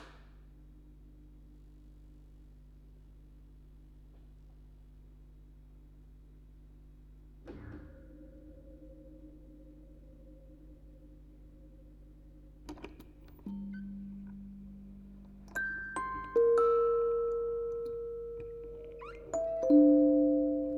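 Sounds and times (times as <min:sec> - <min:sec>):
quartet of music boxes playing on tape: 0:13.4 - 0:20.7.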